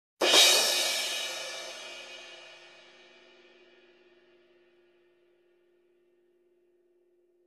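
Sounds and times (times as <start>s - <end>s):
two crash cymbal hits almost simultaneously: 0.2s - 3.8s.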